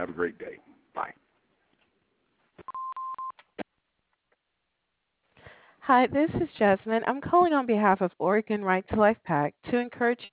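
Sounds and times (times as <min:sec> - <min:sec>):
speech: 0:00.0 - 0:01.2, 0:05.9 - 0:10.3
mid-pitched electronic answering machine beep: 0:02.7 - 0:03.4.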